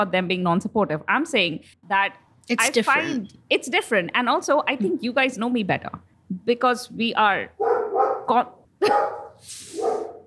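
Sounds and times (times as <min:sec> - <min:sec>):
speech: 0:00.0 - 0:07.7, 0:08.3 - 0:10.1
dog barking: 0:07.6 - 0:10.2.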